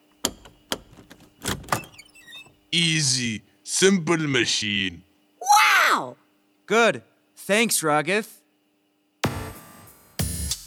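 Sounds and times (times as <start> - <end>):
door handle turning: 0.4 - 2.5
speech: 2.7 - 5.1, 6.0 - 8.4.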